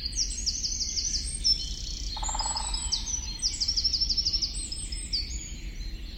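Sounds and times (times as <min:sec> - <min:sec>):
Eurasian wren singing high trills and chirps, Troglodytes troglodytes: 0:00.1 - 0:06.0.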